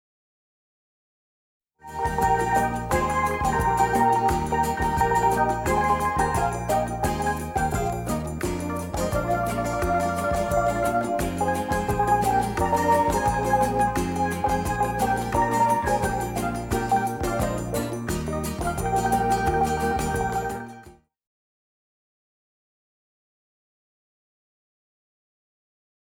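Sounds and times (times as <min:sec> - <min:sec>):
steel band playing: 0:01.9 - 0:20.8.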